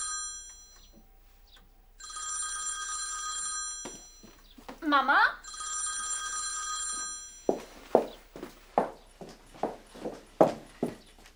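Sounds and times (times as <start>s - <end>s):
mobile phone ringing: 0.0s - 1.0s, 1.9s - 8.2s
sharp, evenly spaced footsteps or clip-clop knocks: 3.8s - 4.8s, 6.9s - 11.3s
speech: 4.9s - 5.5s.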